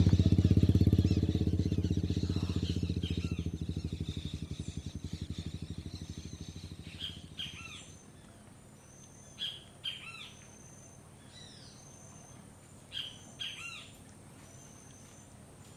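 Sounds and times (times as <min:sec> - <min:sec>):
motorcycle engine idling: 0:00.0 - 0:09.2
birds chirping: 0:00.0 - 0:15.7.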